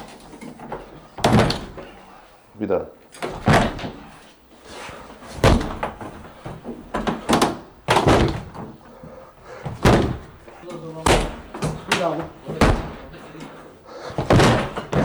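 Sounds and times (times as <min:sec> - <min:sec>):
locked terrace door being broken open with shoulder blows and kicks: 0:01.2 - 0:02.0, 0:03.2 - 0:04.3, 0:05.2 - 0:15.0
speech: 0:02.6 - 0:03.0.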